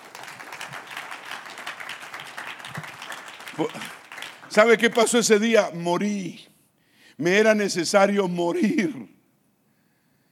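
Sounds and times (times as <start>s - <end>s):
audience applauding with many hands clapping: 0.0s - 5.6s
speech: 3.6s - 6.5s, 7.2s - 9.1s.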